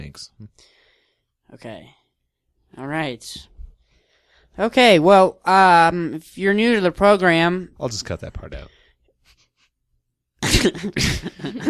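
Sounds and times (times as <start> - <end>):
speech: 0.1 - 0.8, 1.5 - 2.0, 2.7 - 3.5, 4.6 - 8.8, 10.4 - 11.6
bronchial coughing: 10.4 - 11.6.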